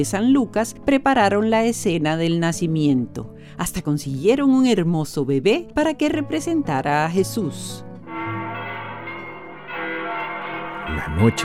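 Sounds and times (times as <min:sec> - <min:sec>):
speech: 0:00.0 - 0:07.9, 0:11.0 - 0:11.4
church bells ringing a peal on Christmas night: 0:08.0 - 0:11.4.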